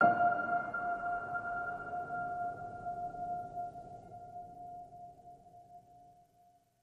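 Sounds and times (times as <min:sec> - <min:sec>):
piano ping on F: 0:00.0 - 0:05.5.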